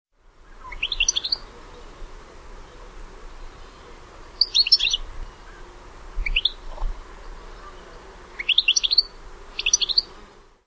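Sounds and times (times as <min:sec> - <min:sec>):
European goldfinch Carduelis carduelis twittering calls: 0:00.6 - 0:01.4, 0:04.4 - 0:05.0, 0:06.2 - 0:06.6, 0:08.4 - 0:10.1.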